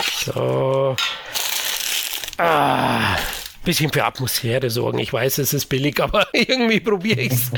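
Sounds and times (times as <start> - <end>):
plastic snack bag being torn open and handled: 0.0 - 2.5, 3.1 - 3.8
speech: 0.2 - 1.4, 2.4 - 7.5
laughter: 6.2 - 7.5.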